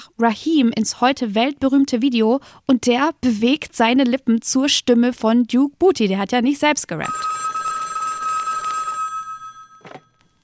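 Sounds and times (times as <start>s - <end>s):
speech: 0.2s - 7.4s
old-fashioned telephone bell ringing: 7.1s - 10.4s.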